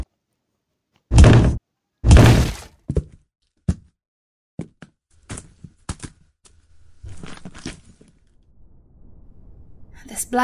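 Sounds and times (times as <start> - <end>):
heavy thuds of a jammed bedroom door being rammed: 1.1 - 2.6
speech: 10.1 - 10.4.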